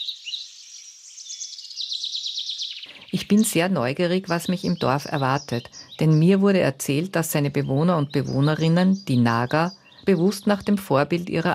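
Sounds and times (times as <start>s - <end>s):
birds chirping and twittering: 0.0s - 11.5s
speech: 2.8s - 11.5s.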